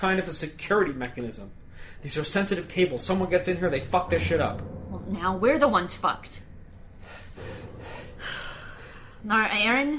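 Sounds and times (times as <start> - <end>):
speech: 0.0 - 6.5, 9.2 - 9.9
panicked heavy breathing of a person trapped inside a room: 6.9 - 9.3.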